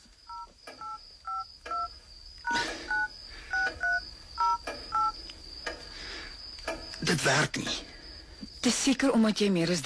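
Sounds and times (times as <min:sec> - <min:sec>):
cellphone keypad tones entering a PIN: 0:00.3 - 0:01.9, 0:02.9 - 0:05.2
speech: 0:07.1 - 0:07.9, 0:08.6 - 0:09.8.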